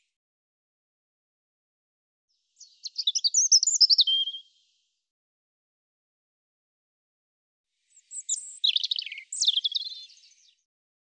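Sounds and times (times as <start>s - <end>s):
European robin singing: 2.6s - 4.5s, 7.9s - 10.6s.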